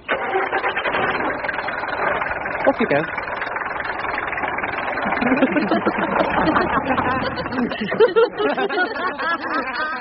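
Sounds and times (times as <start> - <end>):
taxi engine cranking and running: 0.0 - 9.9
speech: 2.7 - 3.2, 5.2 - 9.9
laughter: 5.0 - 9.9.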